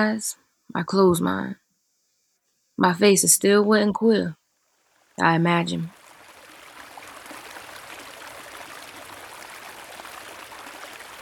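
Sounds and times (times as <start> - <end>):
speech: 0.0 - 1.6, 2.8 - 4.4, 5.2 - 6.0
creek water flowing: 4.6 - 11.2.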